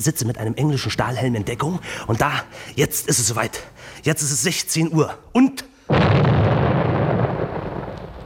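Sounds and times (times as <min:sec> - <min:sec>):
speech: 0:00.0 - 0:06.2
large detonation roar: 0:05.9 - 0:08.2.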